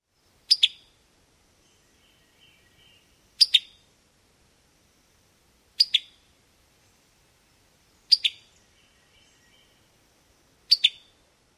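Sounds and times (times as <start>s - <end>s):
male Summer Tanager pitick call: 5.8s - 6.2s, 8.1s - 8.5s, 10.7s - 11.1s.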